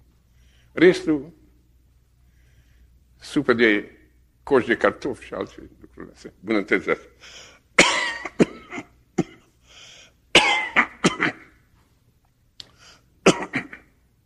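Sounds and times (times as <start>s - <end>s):
quiet breath: 0.2s - 0.8s, 2.2s - 3.1s, 9.6s - 10.2s, 12.6s - 13.2s
speech: 0.8s - 1.4s, 3.2s - 7.5s
harsh wet coughing: 7.8s - 9.6s, 10.3s - 11.6s, 13.2s - 14.0s.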